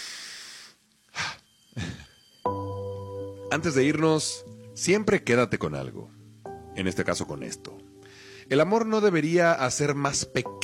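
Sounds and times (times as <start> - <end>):
deep breath with long airy inhale and heavy exhale: 0.0 - 2.2, 8.0 - 8.5
soft hiss: 0.0 - 10.6
sustained musical tone: 1.4 - 10.6
speech: 3.5 - 6.2, 6.8 - 7.8, 8.5 - 10.6.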